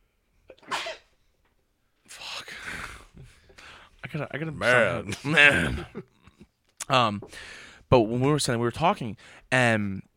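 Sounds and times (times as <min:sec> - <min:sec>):
sneeze: 0:00.5 - 0:01.1
speech: 0:04.1 - 0:06.1, 0:06.9 - 0:10.1.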